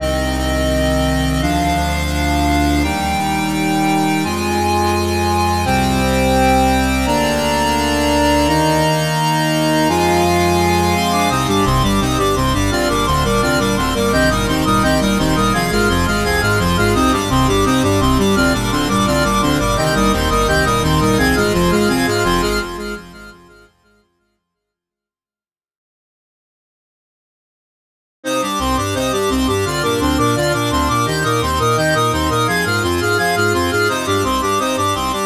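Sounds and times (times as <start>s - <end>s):
170 BPM organ playing: 0.0s - 23.6s, 28.3s - 35.2s.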